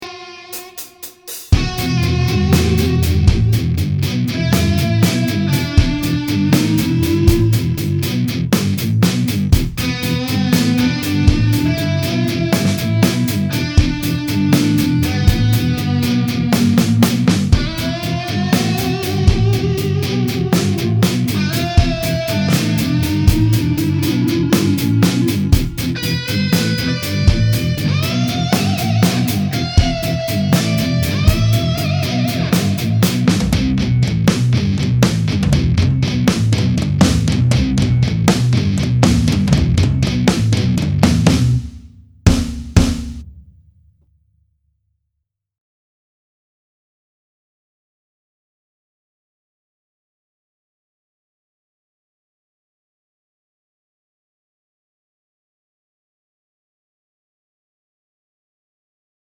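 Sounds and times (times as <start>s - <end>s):
guitar test: 0.0s - 41.6s.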